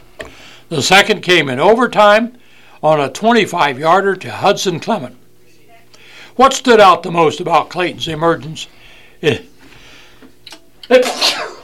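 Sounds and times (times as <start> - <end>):
faint breath: 0.2 - 0.7, 2.4 - 2.8, 5.9 - 6.4, 8.7 - 10.3
speech: 0.7 - 5.2, 6.4 - 9.5, 10.9 - 11.5
person sneezing: 10.9 - 11.6.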